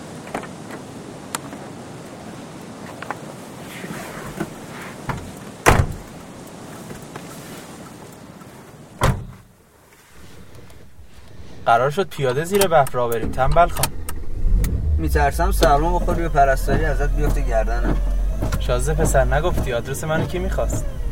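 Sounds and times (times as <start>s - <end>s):
outdoor ambience: 0.0s - 21.1s
car door thudding shut: 5.1s - 6.2s, 9.0s - 9.5s, 12.5s - 21.1s
speech: 11.7s - 14.0s, 15.0s - 21.0s.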